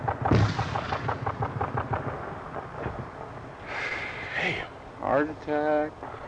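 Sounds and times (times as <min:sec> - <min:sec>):
mortar firing in a combat zone: 0:00.2 - 0:03.1
speech: 0:05.2 - 0:06.1.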